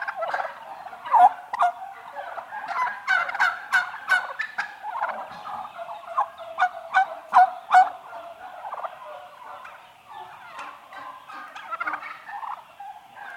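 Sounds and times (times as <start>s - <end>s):
eight-month-old domestic turkey hens yelping: 0.0s - 13.3s.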